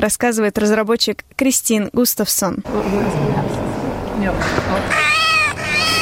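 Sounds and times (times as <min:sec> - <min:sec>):
speech: 0:00.0 - 0:05.9
robotic cat meowing: 0:04.8 - 0:05.9.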